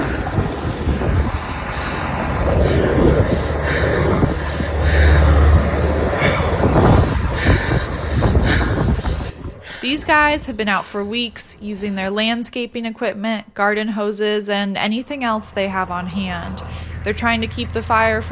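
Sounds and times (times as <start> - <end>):
helicopters roaring overhead over a wildfire: 0.0 - 12.6, 14.0 - 18.3
wind buffeting: 0.0 - 12.7, 14.8 - 18.3
speech: 10.0 - 18.3.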